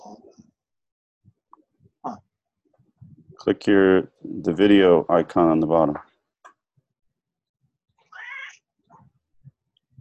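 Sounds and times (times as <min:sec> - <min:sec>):
speech: 0:03.4 - 0:06.1
cat meowing: 0:08.1 - 0:08.6.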